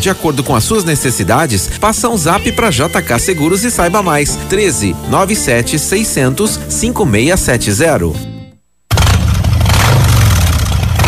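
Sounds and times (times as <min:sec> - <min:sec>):
speech: 0:00.0 - 0:08.3
motorcycle engine revving: 0:08.9 - 0:11.0.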